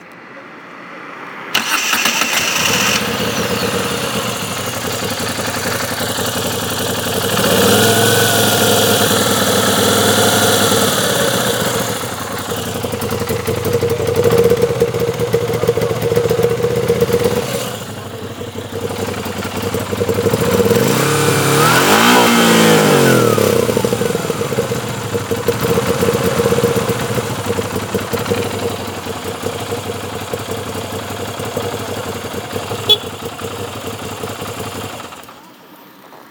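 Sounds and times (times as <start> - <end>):
Moto Guzzi V7 II motorcycle engine: 1.5 - 35.6.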